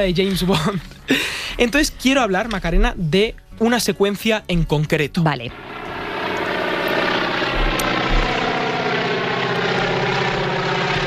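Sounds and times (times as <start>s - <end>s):
speech: 0.0s - 5.8s
old propeller airplane droning overhead: 0.0s - 11.0s.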